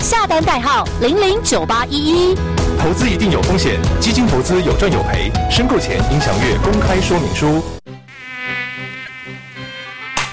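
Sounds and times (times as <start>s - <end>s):
speech: 0.1s - 7.8s
mosquito buzzing: 7.9s - 10.3s.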